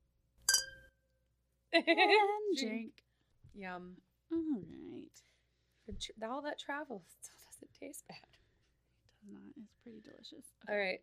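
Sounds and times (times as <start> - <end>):
glasses clinking in a toast: 0.5 - 0.9
speech: 1.7 - 3.0, 3.6 - 5.3, 5.9 - 8.4, 9.2 - 11.0.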